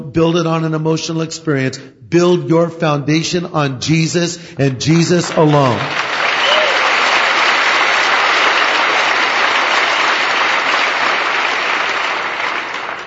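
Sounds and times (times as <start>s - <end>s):
speech: 0.2s - 6.1s
audience applause: 5.2s - 13.0s.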